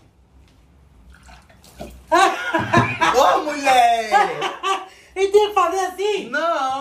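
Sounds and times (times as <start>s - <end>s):
water trickling and dripping: 1.0s - 2.1s
drinking water splashing onto clothes: 1.0s - 3.0s
laughter: 2.1s - 4.9s
speech: 5.2s - 6.7s.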